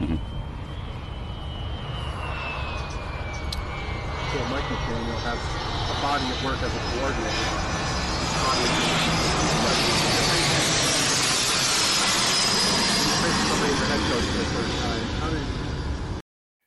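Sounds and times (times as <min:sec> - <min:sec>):
indistinct voices of a press conference: 0:00.0 - 0:00.2
low-flying jet planes coming in to land at an airport: 0:00.0 - 0:16.2
speech: 0:04.4 - 0:07.8, 0:08.4 - 0:09.2, 0:14.0 - 0:15.6.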